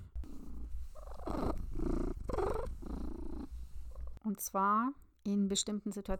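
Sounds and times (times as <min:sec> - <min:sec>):
domestic cat purring: 0:00.0 - 0:04.2
speech: 0:04.3 - 0:06.1.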